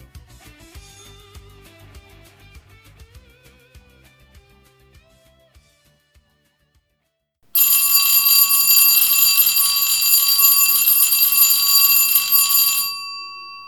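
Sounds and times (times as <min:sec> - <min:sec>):
electric bell ringing: 0:07.6 - 0:13.6.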